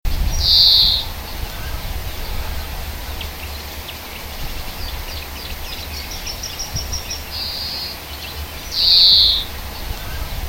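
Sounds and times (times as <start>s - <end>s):
steady low hum: 0.1s - 10.4s
European greenfinch wheezy notes and quick twitters in hedge habitat: 2.1s - 10.0s.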